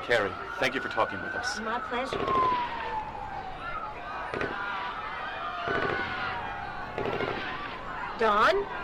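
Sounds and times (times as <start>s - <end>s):
continuous murmur of people talking: 0.0s - 8.8s
speech: 0.1s - 2.8s, 8.2s - 8.8s
gunshot-like bangs: 4.3s - 4.9s, 5.6s - 7.8s.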